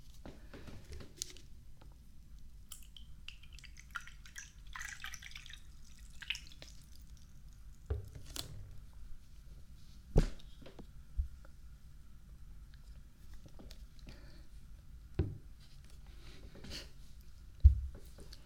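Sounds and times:
steady low hum: 0:00.0 - 0:18.4
water dripping: 0:02.7 - 0:08.4
water pouring into a glass: 0:03.2 - 0:07.1.

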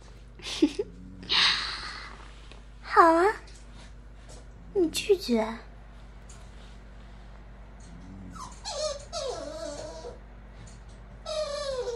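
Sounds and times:
low steady hum: 0:00.0 - 0:11.9
speech: 0:04.9 - 0:05.7
dog whimpering and whining: 0:07.9 - 0:10.2, 0:11.2 - 0:11.9.

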